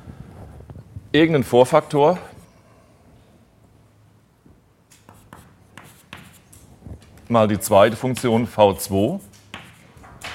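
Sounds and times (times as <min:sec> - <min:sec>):
speech: 0:01.1 - 0:02.3, 0:07.3 - 0:09.3
handwriting strokes writing a mathematical function: 0:05.0 - 0:06.7, 0:07.8 - 0:10.0.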